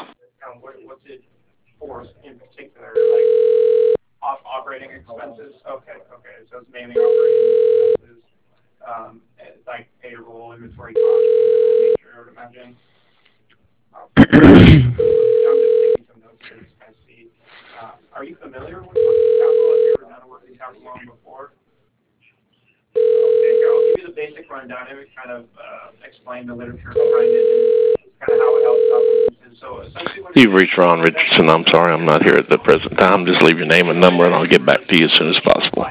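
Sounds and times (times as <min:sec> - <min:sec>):
telephone ringback tones as a call is transferred to voicemail: 0:03.0 - 0:04.0, 0:07.0 - 0:08.0, 0:11.0 - 0:12.0, 0:15.0 - 0:16.0, 0:19.0 - 0:20.0, 0:23.0 - 0:24.0, 0:27.0 - 0:29.3
speech: 0:30.4 - 0:35.6.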